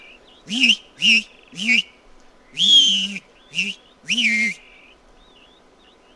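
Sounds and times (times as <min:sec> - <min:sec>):
plumbeous rail calling in harsh wavering hoots: 0:00.4 - 0:01.9, 0:02.6 - 0:04.9.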